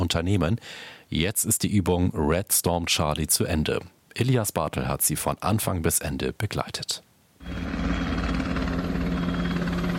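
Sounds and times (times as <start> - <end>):
speech: 0.1 - 8.0
helicopter flying over Hamburg during a Bundeswehr military exercise: 7.4 - 9.9.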